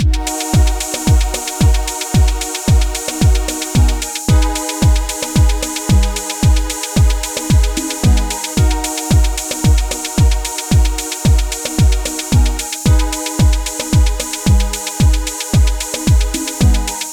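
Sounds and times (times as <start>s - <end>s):
Amapiano drums: 0.0s - 17.1s
Amapiano synths: 0.0s - 17.1s.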